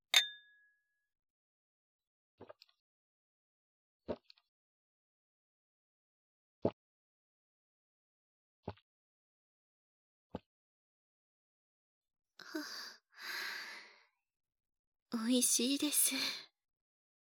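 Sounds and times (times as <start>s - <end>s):
beer glasses clinking in a toast: 0.1s - 0.5s
soft breathy sigh: 12.4s - 14.0s
speech: 15.1s - 16.5s.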